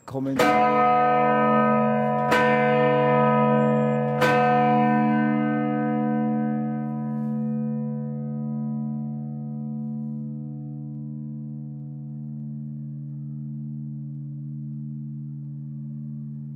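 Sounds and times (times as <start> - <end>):
church bell ringing with long reverberation: 0.0 - 16.5
speech: 0.1 - 1.7.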